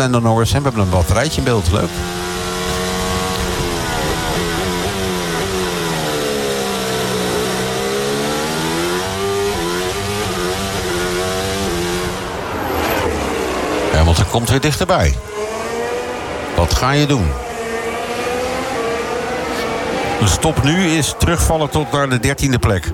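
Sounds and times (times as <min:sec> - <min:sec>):
speech: 0:00.0 - 0:02.3, 0:14.3 - 0:15.4, 0:16.6 - 0:17.5, 0:20.2 - 0:22.9
Formula 1 race car onboard engine high-revving whine: 0:00.0 - 0:22.9.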